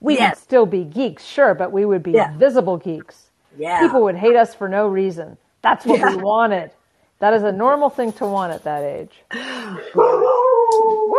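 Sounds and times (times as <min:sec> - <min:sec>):
speech: 0:00.0 - 0:10.4
dog howling: 0:10.0 - 0:11.1.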